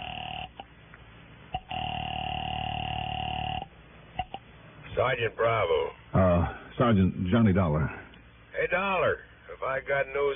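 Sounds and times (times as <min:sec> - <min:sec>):
telephone line tone through a receiver: 0:00.0 - 0:00.7, 0:01.6 - 0:04.4
speech: 0:05.0 - 0:08.0, 0:08.6 - 0:10.3.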